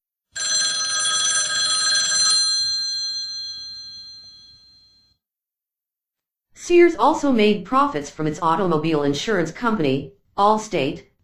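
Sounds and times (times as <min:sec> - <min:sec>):
old-fashioned telephone bell ringing: 0:00.3 - 0:05.2
speech: 0:06.6 - 0:11.1.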